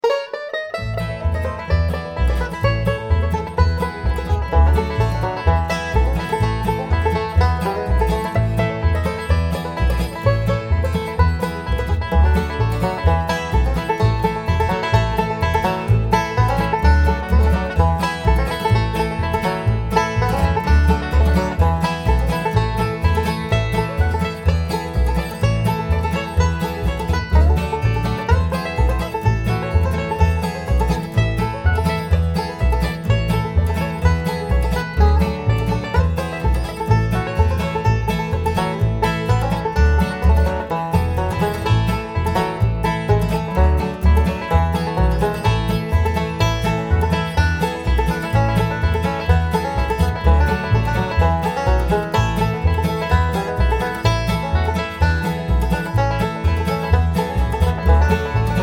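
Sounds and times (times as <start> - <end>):
banjo signal: 0.0 - 58.6.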